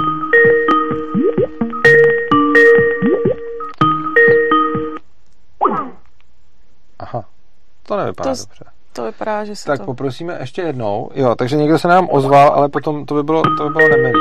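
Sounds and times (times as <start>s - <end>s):
phone ringtone electronic melodic phrase: 0.0s - 5.0s, 13.4s - 14.1s
speech: 7.9s - 14.1s.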